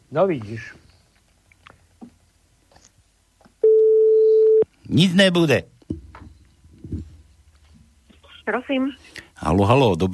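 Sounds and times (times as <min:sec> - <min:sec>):
speech: 0:00.1 - 0:00.8, 0:04.9 - 0:05.7, 0:08.5 - 0:10.1
telephone busy tone after a call is cut off: 0:03.6 - 0:04.6.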